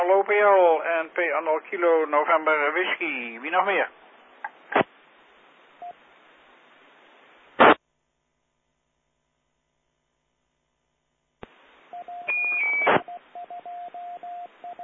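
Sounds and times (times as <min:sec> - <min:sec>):
hissing radio channel: 0:00.0 - 0:04.0, 0:07.1 - 0:07.8, 0:11.4 - 0:13.1
speech: 0:00.1 - 0:04.0
short electronic beeps and tonal blips: 0:12.0 - 0:14.8
noisy radio squelch bursts: 0:12.2 - 0:13.1.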